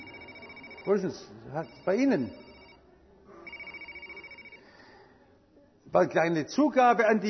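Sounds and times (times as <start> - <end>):
mobile phone ringing with warbling electronic tone: 0.0 - 2.8, 3.4 - 4.7
faint murmur: 0.0 - 7.2
speech: 0.8 - 2.5, 5.9 - 7.2.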